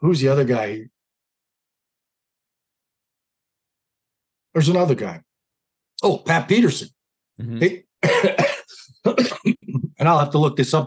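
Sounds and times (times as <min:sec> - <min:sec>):
speech: 0:00.0 - 0:00.9, 0:04.5 - 0:05.3, 0:06.0 - 0:10.8
short vocal sound: 0:07.4 - 0:07.8
man with cough drops in his mouth coughing: 0:08.0 - 0:10.0.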